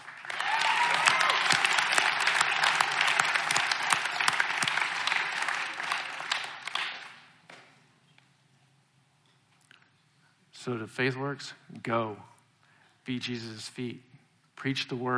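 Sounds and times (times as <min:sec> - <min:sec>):
audience applause: 0:00.0 - 0:07.3
speech: 0:10.7 - 0:12.3, 0:13.0 - 0:15.1.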